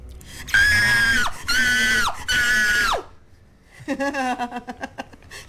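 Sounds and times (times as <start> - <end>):
wavering pulsing cry: 0.4 - 3.2
person screaming in acted fear: 0.5 - 3.1
laughter: 3.8 - 5.4.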